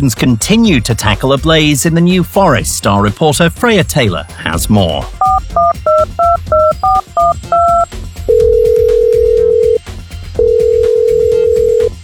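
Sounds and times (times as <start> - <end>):
speech: 0.0 - 6.2
telephone keypad dialing tones for an emergency call: 5.2 - 9.8, 10.4 - 12.0.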